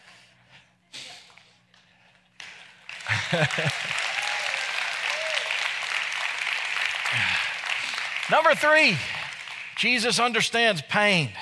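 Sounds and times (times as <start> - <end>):
crowd applauding: 2.4 - 10.5
laughter: 3.0 - 4.2
speech: 3.3 - 4.1, 8.3 - 9.2, 9.8 - 11.3.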